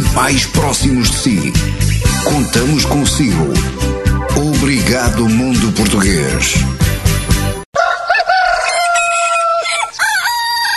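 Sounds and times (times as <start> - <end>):
speech: 0.2 - 6.8
rooster crowing: 7.8 - 10.7.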